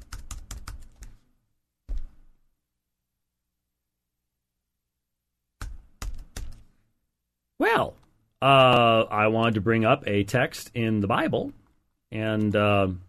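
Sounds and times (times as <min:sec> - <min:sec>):
typing on a computer keyboard: 0:00.0 - 0:01.2, 0:05.6 - 0:06.6
speech: 0:07.6 - 0:13.0.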